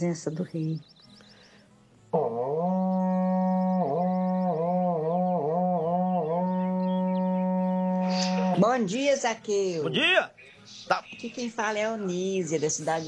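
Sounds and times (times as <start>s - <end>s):
speech: 0.0s - 1.0s, 8.6s - 13.0s
berrante cattle horn blast: 2.1s - 8.8s.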